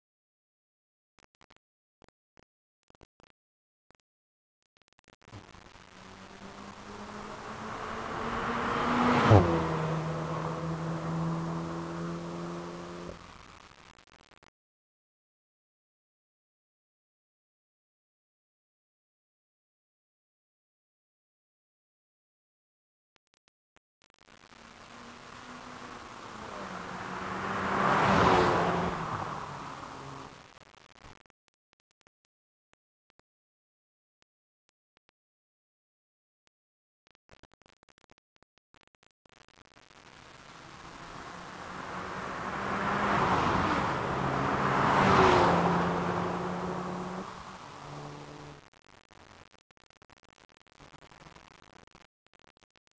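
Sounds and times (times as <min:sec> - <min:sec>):
golf cart passing by: 0:06.0 - 0:13.4, 0:24.9 - 0:30.4, 0:40.6 - 0:48.6.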